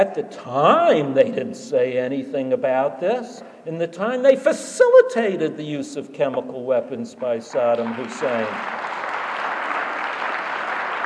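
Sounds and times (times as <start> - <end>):
speech: 0.0 - 8.9
audience applause: 7.5 - 11.0.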